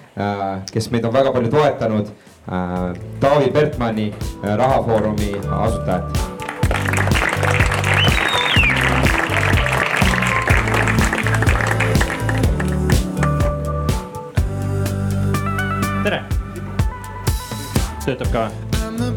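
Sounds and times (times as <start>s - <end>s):
speech: 0.2s - 7.2s, 18.1s - 19.1s
upbeat walk-on music with a thumping beat: 3.8s - 19.1s
crowd clapping to welcome a speaker: 4.8s - 5.6s, 6.2s - 14.0s.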